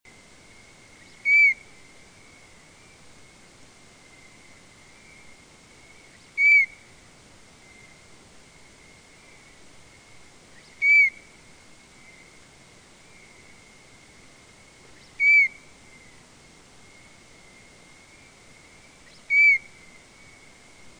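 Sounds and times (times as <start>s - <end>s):
cricket peeping slowed to half speed: 0.1s - 20.9s.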